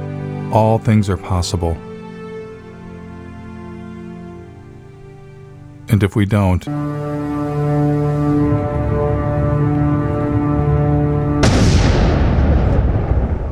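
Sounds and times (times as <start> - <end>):
sustained tonal passage: 0.0 - 13.4
speech: 0.5 - 1.9, 5.9 - 7.3
explosion sound effect added for cinematic effect: 11.4 - 13.4.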